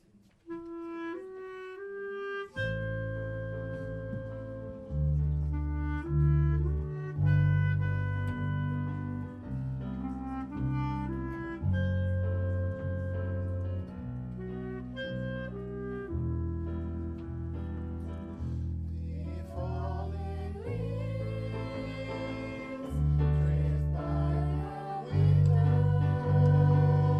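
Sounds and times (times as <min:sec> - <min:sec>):
jazz standard improvisation: 0:00.4 - 0:27.1.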